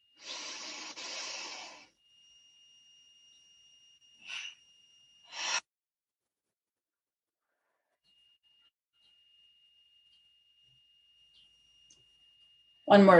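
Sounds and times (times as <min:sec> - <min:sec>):
person breathing in through nose and out through mouth: 0:00.2 - 0:01.9
speech: 0:12.9 - 0:13.1.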